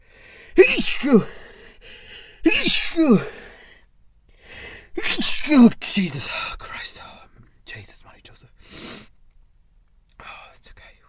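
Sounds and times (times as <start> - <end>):
person sneezing: 0.5 - 1.5, 2.4 - 3.5, 4.9 - 5.8
speech: 1.0 - 1.4, 3.0 - 3.4, 5.5 - 6.6.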